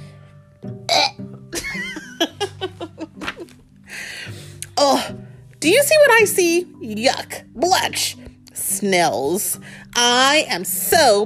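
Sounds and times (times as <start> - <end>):
person imitating a burp: 0.9 - 1.4
giggles: 1.6 - 3.5
breathy noise: 3.8 - 5.4
speech: 4.8 - 8.2, 8.8 - 11.2.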